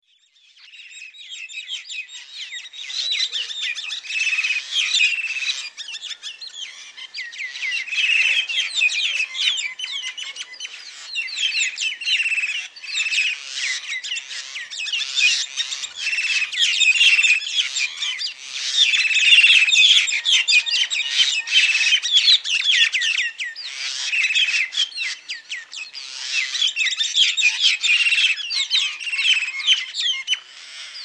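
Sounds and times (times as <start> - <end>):
common myna bird calls: 0.4 - 31.0.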